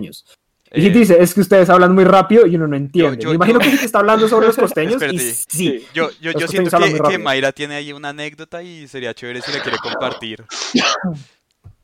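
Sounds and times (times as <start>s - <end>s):
speech: 0.0s - 11.4s
laughter: 3.0s - 7.4s, 9.4s - 10.4s
person sneezing: 9.4s - 11.4s.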